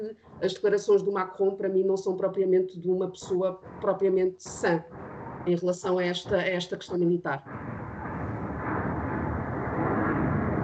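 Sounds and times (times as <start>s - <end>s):
speech: 0.0s - 7.7s
airplane passing overhead: 7.5s - 10.6s.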